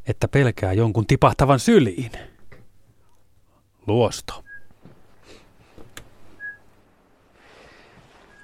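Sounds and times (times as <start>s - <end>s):
speech: 0.1s - 2.3s, 3.9s - 4.5s
faint outdoor rustling: 2.0s - 8.4s
person whistling short clear notes imitating a pygmy owl's call: 6.4s - 6.7s.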